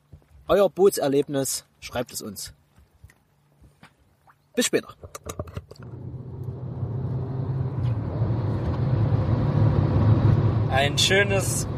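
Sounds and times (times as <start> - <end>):
speech: 0.5 - 2.6, 4.6 - 6.0, 10.7 - 11.7
car engine rumble from inside a moving car: 5.2 - 11.7
road noise from inside a moving car: 5.7 - 11.7.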